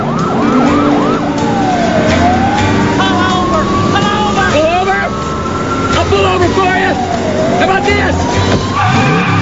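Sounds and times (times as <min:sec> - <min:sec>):
heavy engine roar: 0:00.0 - 0:09.4
sharp squealing tire skids: 0:00.0 - 0:09.4
sirens of two police cars in a chase wailing: 0:00.0 - 0:09.4.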